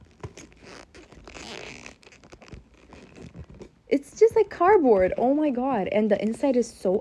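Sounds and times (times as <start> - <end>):
handbag zipper being pulled back and forth: 0.0 - 5.2
speech: 3.9 - 6.9.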